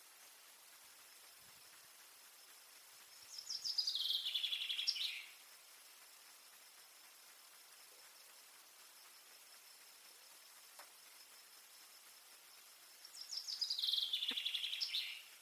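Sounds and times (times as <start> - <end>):
common chaffinch Fringilla coelebs singing: 3.0 - 10.4, 11.0 - 15.3.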